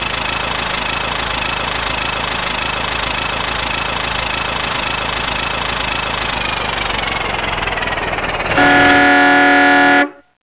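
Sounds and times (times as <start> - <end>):
Model T engine running and slowing on a laundry truck: 0.0 - 10.1
Model T horn on a laundry truck: 8.5 - 10.3.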